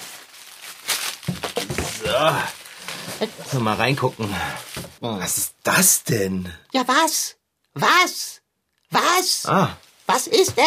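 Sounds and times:
wrapping paper crinkling and tearing as it is pulled off a package: 0.0 - 5.0
speech: 2.2 - 2.6, 3.2 - 10.6.

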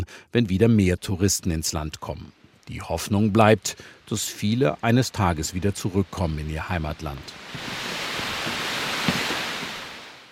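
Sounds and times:
speech: 0.0 - 7.9
waterfall below a monastery roaring: 5.4 - 10.2.

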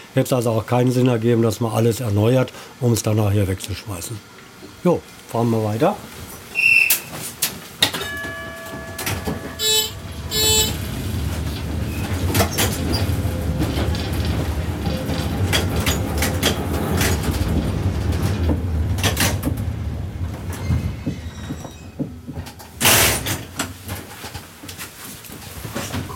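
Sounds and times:
speech: 0.2 - 6.2
1937 Hamburg tram railcar rumbling along the rails: 5.6 - 26.1
tram wheel noise: 6.0 - 26.1
1937 Hamburg tram railcar doors clattering shut: 6.3 - 24.5
bell-like ring of tram doors: 8.0 - 10.8
low tram motor drone: 9.0 - 20.1.

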